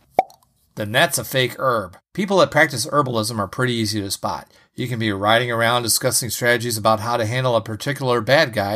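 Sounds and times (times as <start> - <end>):
loud suction cup pop: 0.2 - 0.4
speech: 0.8 - 8.7.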